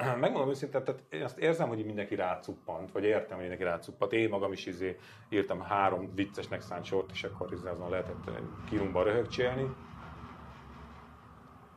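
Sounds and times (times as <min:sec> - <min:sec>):
speech: 0:00.2 - 0:09.9
tram rumbling past outside with a faint metallic hum: 0:05.3 - 0:11.7.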